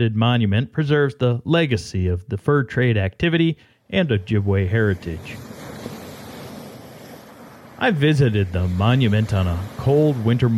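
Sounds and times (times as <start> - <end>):
speech: 0.0 - 5.6, 7.8 - 10.5
lake waves washing against a shoreline: 3.9 - 10.5
windy rumble: 4.0 - 10.5.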